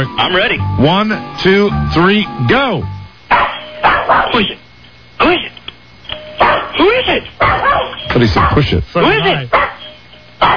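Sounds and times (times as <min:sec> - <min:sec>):
speech: 0:00.0 - 0:03.0, 0:04.1 - 0:04.6, 0:05.2 - 0:05.5, 0:08.2 - 0:09.7
dog barking and yelping: 0:03.3 - 0:04.5, 0:06.4 - 0:06.8, 0:07.4 - 0:08.8, 0:09.5 - 0:10.5.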